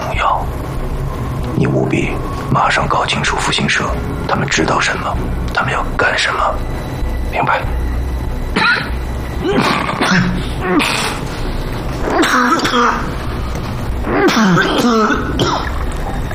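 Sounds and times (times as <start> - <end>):
steady low hum: 0.0 - 16.3
speech: 1.6 - 7.8, 9.4 - 11.2, 12.0 - 13.2, 14.0 - 15.8
person clearing throat: 8.6 - 11.2, 12.1 - 13.1, 14.1 - 15.8
person coughing harshly: 8.6 - 11.2, 12.1 - 13.1, 14.1 - 15.7.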